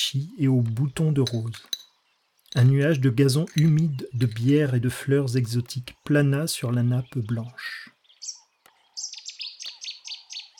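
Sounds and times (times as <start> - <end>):
speech: 0.0 - 1.8, 2.5 - 8.4
nightingales singing outside: 0.5 - 10.5.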